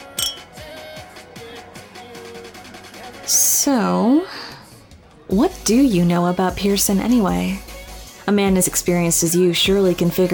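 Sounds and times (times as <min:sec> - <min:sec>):
glasses clinking in a toast: 0:00.0 - 0:00.6
speech: 0:03.3 - 0:04.3, 0:05.3 - 0:07.6, 0:08.3 - 0:10.3.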